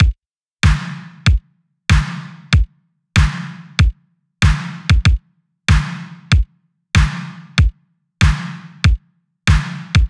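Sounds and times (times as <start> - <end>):
stripped synthwave drum kit beat at 95 bpm: 0.0 - 5.9, 7.0 - 8.6, 9.5 - 10.0.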